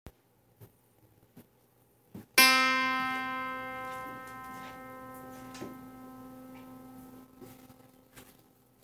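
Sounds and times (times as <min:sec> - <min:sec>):
auto pluck zither: 0:02.4 - 0:07.6.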